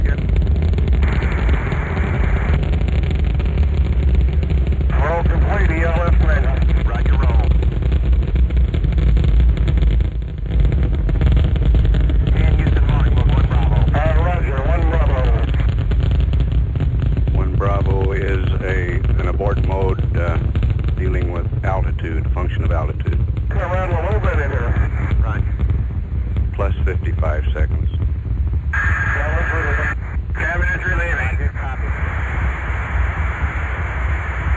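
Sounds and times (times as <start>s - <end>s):
rocket engine roar just after liftoff: 0.0s - 34.5s
crackly radio voices talking: 4.8s - 7.6s, 12.1s - 15.8s, 17.3s - 25.7s, 26.5s - 28.0s, 28.8s - 34.5s.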